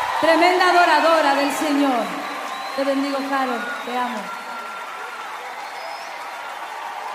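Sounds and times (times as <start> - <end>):
large audience applause: 0.0 - 7.1
speech: 0.2 - 2.2, 2.8 - 4.4.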